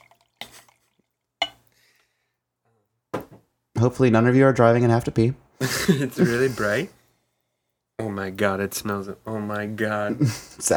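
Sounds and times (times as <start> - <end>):
tequila barrel-aged sour beer pouring into a glass: 0.0 - 1.6
speech: 3.8 - 7.0, 8.1 - 10.7
laughter: 5.6 - 6.9, 10.1 - 10.7.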